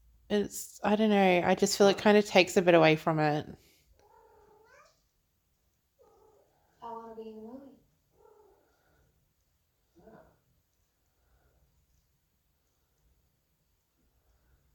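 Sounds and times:
speech: 0:00.3 - 0:03.7
cat meowing: 0:04.0 - 0:05.0.

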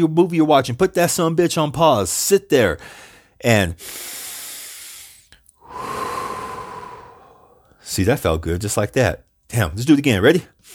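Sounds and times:
speech: 0:00.0 - 0:04.2, 0:07.9 - 0:10.7
deep breath in through the nose and out through the mouth: 0:02.8 - 0:07.8.

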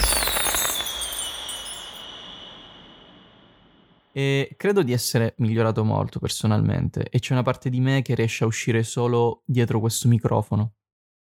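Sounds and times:
firework sound effect whistling and crackling: 0:00.0 - 0:03.9
speech: 0:04.2 - 0:11.2.

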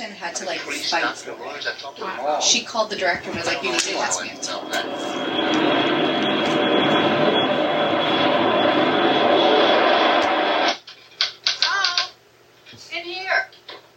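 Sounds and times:
speech: 0:00.2 - 0:06.1
airplane engine roar: 0:00.4 - 0:10.8
fluttering tones: 0:02.4 - 0:10.7.

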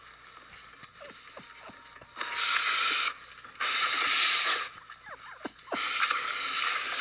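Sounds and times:
laughter: 0:01.0 - 0:06.8
loud wet slurping and smacking mouth sounds of a person eating: 0:02.9 - 0:06.0.

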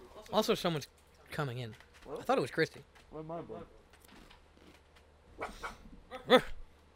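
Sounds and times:
speech: 0:00.3 - 0:03.8, 0:05.4 - 0:06.6
dog barking and whimpering: 0:05.4 - 0:05.9.

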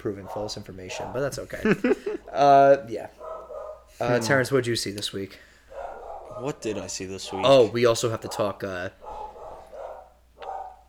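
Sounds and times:
dog barking whiny barks: 0:00.0 - 0:01.3, 0:03.1 - 0:04.2, 0:05.7 - 0:10.8
speech: 0:00.0 - 0:03.2, 0:04.0 - 0:05.5, 0:06.4 - 0:09.2.

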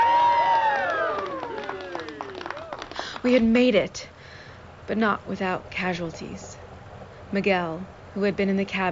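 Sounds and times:
crew cheering: 0:00.0 - 0:03.2
speech: 0:03.2 - 0:04.1, 0:04.9 - 0:06.5, 0:07.3 - 0:08.9.

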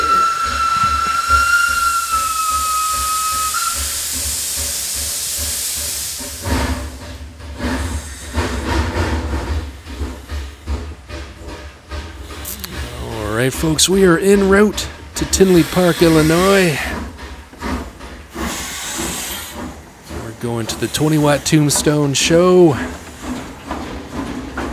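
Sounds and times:
steam train whistle: 0:00.0 - 0:04.8, 0:15.3 - 0:17.0
loud hiss of escaping steam: 0:00.0 - 0:24.7
speech: 0:13.5 - 0:16.9, 0:20.6 - 0:23.0.

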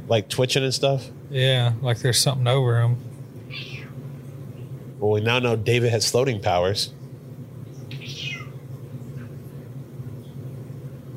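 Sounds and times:
steady low hum of noise: 0:00.0 - 0:11.1
speech: 0:00.1 - 0:03.7, 0:05.0 - 0:07.0
cat meowing: 0:03.5 - 0:04.0, 0:07.9 - 0:08.6.

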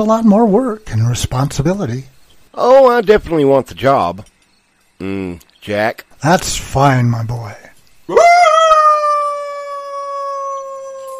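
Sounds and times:
speech: 0:00.0 - 0:04.3, 0:05.0 - 0:08.4
dog howling: 0:08.1 - 0:11.1.

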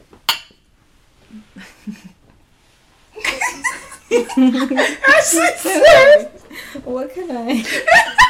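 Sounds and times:
wine glasses clinking in a toast: 0:00.3 - 0:00.7
people chuckling and laughing loudly: 0:03.2 - 0:06.8, 0:07.5 - 0:08.2
speech: 0:04.1 - 0:08.2.

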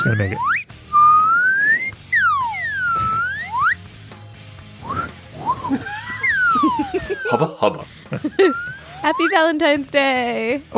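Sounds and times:
speech: 0:00.0 - 0:00.7, 0:07.3 - 0:10.7
slide whistle swooping: 0:00.0 - 0:03.9, 0:04.8 - 0:07.4, 0:08.4 - 0:09.6
laughter: 0:05.4 - 0:09.3.

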